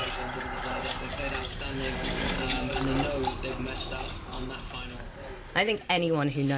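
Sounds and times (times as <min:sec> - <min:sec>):
drink poured over ice into a glass: 0:00.0 - 0:05.2
speech: 0:03.8 - 0:06.5.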